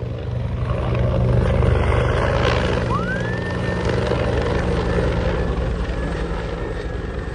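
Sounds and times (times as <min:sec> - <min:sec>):
Bell 412 helicopter rotor roaring while dropping water during a fire: 0:00.0 - 0:07.3
faint rising whine: 0:02.2 - 0:07.3.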